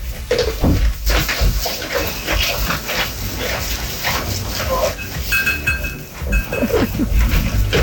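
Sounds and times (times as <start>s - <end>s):
goats chewing cud: 0.0s - 7.8s
goats rustling and shuffling: 0.0s - 7.8s.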